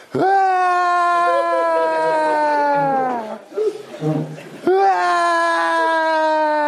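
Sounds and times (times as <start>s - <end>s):
man screaming and wailing: 0.0s - 3.4s, 4.7s - 6.6s
laughter: 1.1s - 6.4s.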